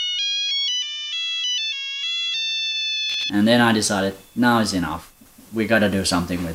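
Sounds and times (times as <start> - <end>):
Nokia 2 mobile phone ringtone: 0.0 - 5.2
speech: 3.1 - 6.5.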